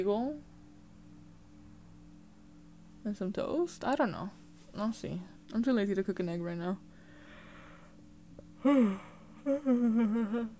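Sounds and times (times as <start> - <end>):
speech: 0.0 - 0.5, 3.0 - 6.9, 8.6 - 10.5
person yawning: 8.6 - 10.5.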